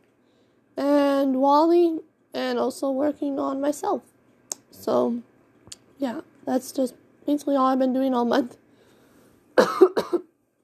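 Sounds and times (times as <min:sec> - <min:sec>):
speech: 0:01.2 - 0:04.1, 0:04.7 - 0:05.3, 0:06.0 - 0:08.6
person coughing loud and raspy: 0:09.6 - 0:10.3.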